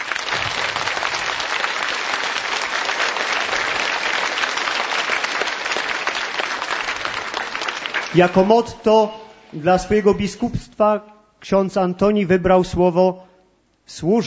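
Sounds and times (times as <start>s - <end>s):
large audience applauding: 0.0s - 8.7s
speech: 8.1s - 13.3s, 13.9s - 14.2s.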